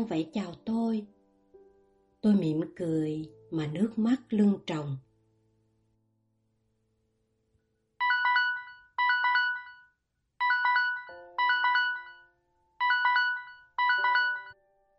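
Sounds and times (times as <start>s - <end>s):
speech: 0.0s - 1.2s, 2.2s - 5.1s
electronic alarm clock ringing in melodic bursts: 8.0s - 14.6s.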